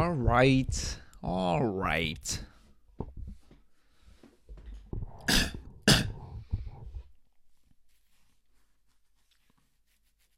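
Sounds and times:
speech: 0.0s - 3.1s, 5.3s - 5.5s
low rumbling throat clearing: 5.2s - 6.4s
person coughing: 5.2s - 6.4s.

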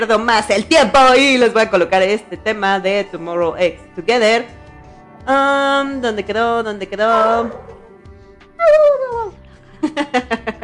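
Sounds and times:
speech: 0.0s - 4.6s, 5.2s - 7.8s, 8.6s - 10.6s
pitbull dogs guarding the house barking: 7.1s - 8.0s
pitbull dog drawn-out falling whine-like yelp: 8.6s - 9.4s.

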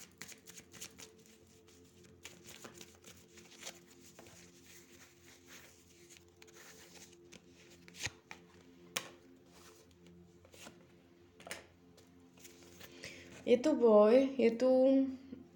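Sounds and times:
tarot cards being shuffled and laid out: 0.0s - 10.8s, 12.3s - 13.4s
speech: 13.5s - 15.2s.

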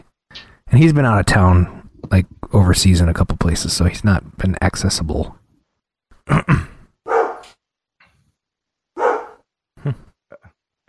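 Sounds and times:
speech: 0.7s - 5.4s, 6.3s - 6.7s
dog barking: 7.1s - 7.5s, 9.0s - 9.5s
dog yipping: 7.1s - 7.5s, 9.0s - 9.4s.

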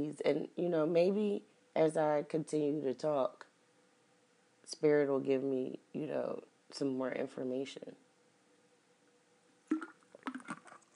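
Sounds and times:
speech: 0.0s - 3.5s, 4.7s - 8.0s
slurping and swallowing a sip of water: 9.7s - 10.9s.

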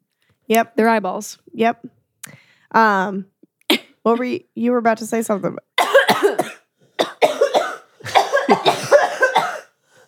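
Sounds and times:
speech: 0.5s - 6.5s
person coughing: 5.8s - 9.8s.

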